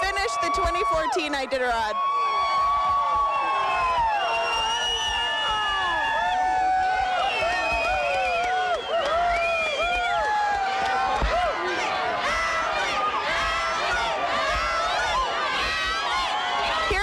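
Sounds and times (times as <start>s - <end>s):
excited whoops: 0.0s - 11.6s
crowd cheering at sled dog race finish chute: 0.0s - 17.0s
speech: 0.8s - 2.2s.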